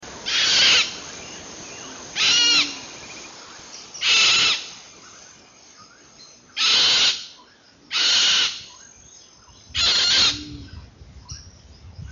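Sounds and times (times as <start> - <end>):
Cacatua goffini calling: 0.2 - 1.0, 2.2 - 2.9, 6.6 - 8.8, 9.8 - 10.8.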